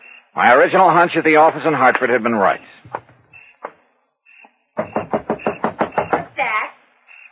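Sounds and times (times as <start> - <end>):
speech: 0.4 - 3.0
knocking on a front door: 4.8 - 6.4.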